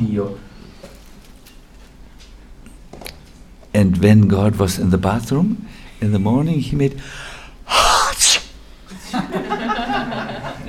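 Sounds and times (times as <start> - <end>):
speech: 0.0 - 0.5, 3.8 - 7.3
voice imitating a sneeze: 7.7 - 8.6
laughter: 8.9 - 10.6.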